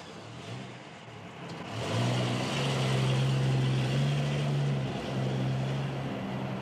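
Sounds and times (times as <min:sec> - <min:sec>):
road noise: 0:00.0 - 0:06.5
car engine starting, revving and pulling off: 0:01.4 - 0:06.5.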